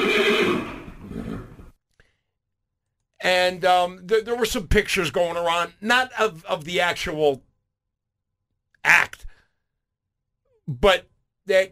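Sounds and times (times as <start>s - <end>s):
horse whinny: 0.0s - 1.7s
speech: 3.2s - 7.5s, 8.8s - 9.3s, 10.7s - 11.7s.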